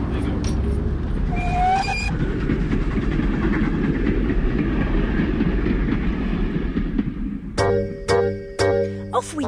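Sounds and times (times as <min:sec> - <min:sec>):
steam train chugging along the rails: 0:00.2 - 0:09.4
steam train whistle: 0:01.3 - 0:02.1.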